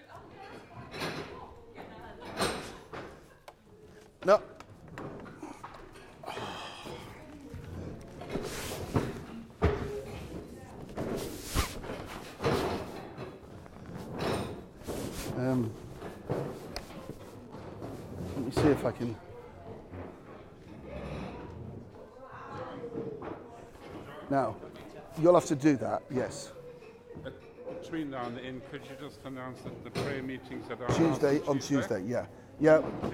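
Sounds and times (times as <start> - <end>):
speech: 4.2 - 4.6, 18.9 - 19.3, 24.3 - 24.6, 25.2 - 26.6, 27.2 - 33.1
wooden chairs dragged and shifted across a floor: 4.9 - 19.1, 19.9 - 22.0.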